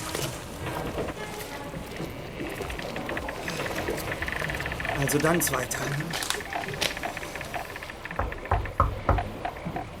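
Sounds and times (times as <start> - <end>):
water rushing and splashing: 0.0 - 9.9
faint clatters: 0.1 - 9.9
speech: 5.0 - 6.3.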